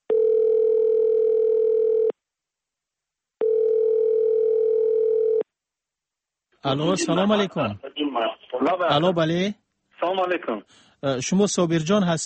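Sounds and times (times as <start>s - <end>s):
telephone ringback tone while placing a call: 0.1s - 2.1s, 3.4s - 5.4s
speech: 6.6s - 12.2s.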